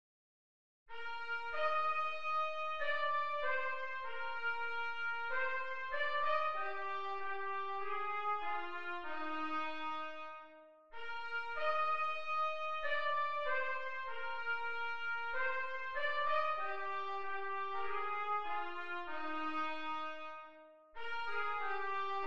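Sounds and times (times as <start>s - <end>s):
trumpet playing: 1.0s - 10.2s, 11.5s - 20.3s, 21.0s - 22.2s.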